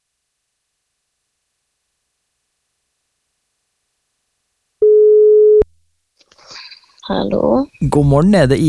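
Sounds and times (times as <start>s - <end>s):
telephone ringback tone: 4.8s - 5.7s
speech: 7.1s - 8.6s.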